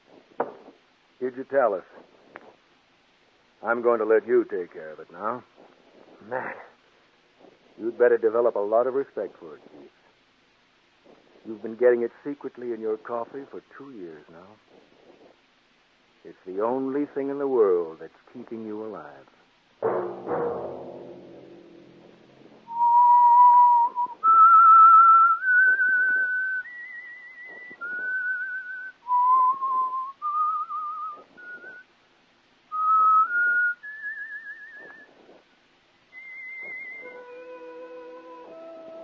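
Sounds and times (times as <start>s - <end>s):
speech: 1.2s - 2.0s, 3.6s - 5.5s, 6.2s - 6.7s, 7.8s - 10.0s, 11.4s - 14.9s, 16.2s - 20.5s
lone whistled haunting melody: 22.7s - 31.9s, 32.7s - 35.1s, 36.1s - 39.0s.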